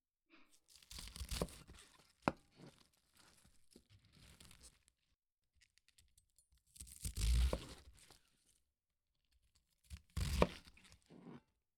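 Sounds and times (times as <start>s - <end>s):
sharp kitchen knife slicing through fresh cabbage: 0.6s - 3.5s, 6.7s - 8.2s, 9.9s - 11.5s.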